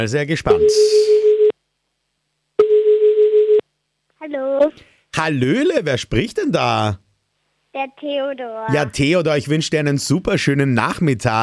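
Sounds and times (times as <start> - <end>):
speech: 0.0 - 1.5, 4.3 - 7.0, 7.7 - 11.4
telephone line ringing for a radio call-in: 2.6 - 3.6.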